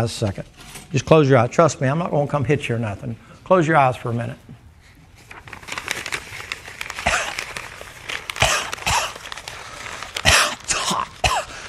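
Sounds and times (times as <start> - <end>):
speech: 0.0 - 4.5
paper crinkled to imitate a crackling fire: 5.0 - 11.6.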